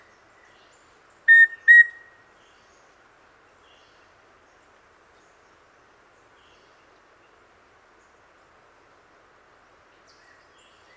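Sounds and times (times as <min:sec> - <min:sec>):
rufous-breasted antthrush Formicarius rufipectus singing pure level whistles: 0:01.3 - 0:02.0.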